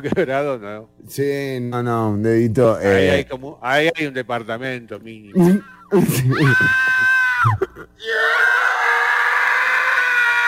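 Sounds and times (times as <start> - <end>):
speech: 0.0 - 6.9
laughter: 5.4 - 7.9
small child screaming in pain: 6.3 - 10.4.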